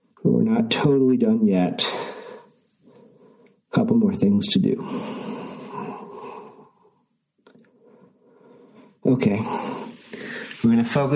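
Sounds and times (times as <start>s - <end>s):
speech: 0.3s - 2.1s, 3.7s - 5.3s, 9.1s - 9.8s, 10.6s - 11.1s
deep breathing during a yoga session: 1.8s - 3.7s, 4.8s - 10.7s.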